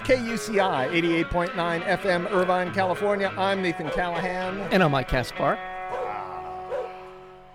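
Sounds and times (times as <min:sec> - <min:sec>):
speech: 0:00.1 - 0:05.7
dog giving short barks: 0:05.9 - 0:07.0.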